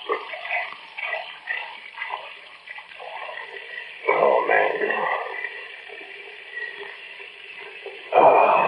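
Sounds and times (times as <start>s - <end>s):
tap water running into a glass in a small kitchen: 0.0s - 8.6s.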